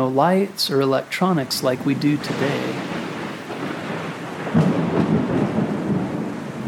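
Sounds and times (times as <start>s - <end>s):
speech: 0.0s - 2.9s
heavy rain hissing: 0.0s - 6.6s
deep rolling thunder in a thunderstorm: 1.5s - 6.6s.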